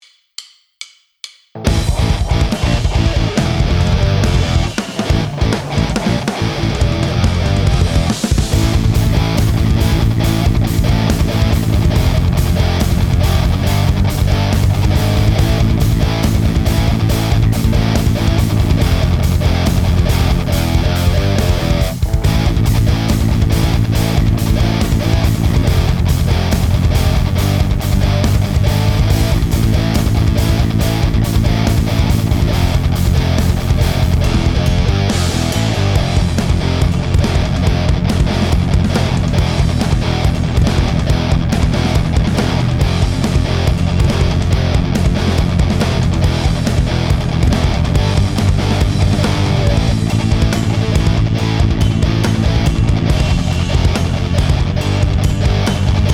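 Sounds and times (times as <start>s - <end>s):
metal guitar karaoke backing track: 1.6s - 56.1s.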